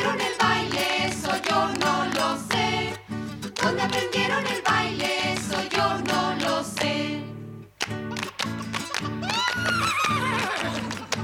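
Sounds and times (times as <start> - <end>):
upbeat rhythmic song about farm animals: 0.0 - 11.2
laughter: 8.1 - 11.2
horse neighing: 9.3 - 10.9.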